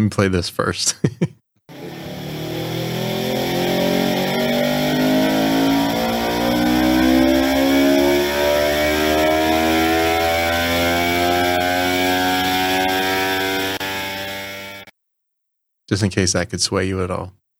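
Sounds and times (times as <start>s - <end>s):
speech: 0.0s - 1.4s, 15.9s - 17.4s
motorcycle with aftermarket exhaust pipe revving on a dyno: 1.7s - 14.9s.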